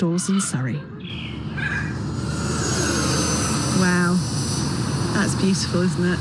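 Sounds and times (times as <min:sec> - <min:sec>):
speech: 0:00.0 - 0:02.0, 0:03.8 - 0:04.2, 0:05.2 - 0:06.1
model aircraft flying over a club field outside Leatherhead in Surrey: 0:02.0 - 0:06.1.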